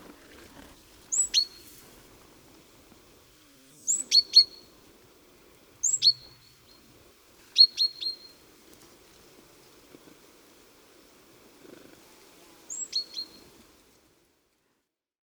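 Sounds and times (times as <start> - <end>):
great tit Parus major calls: 0.8 - 11.9, 12.7 - 13.6.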